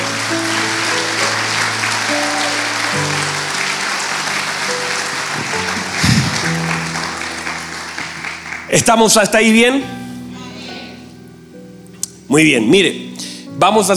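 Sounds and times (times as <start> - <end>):
crowd applause: 0.0 - 9.2
held keyboard chords: 0.0 - 13.9
speech: 8.8 - 10.0, 12.3 - 13.0, 13.6 - 13.9.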